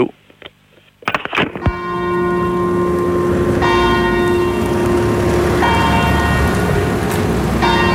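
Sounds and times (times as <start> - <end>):
speech: 0.0 - 0.2
church bells ringing: 1.6 - 7.9.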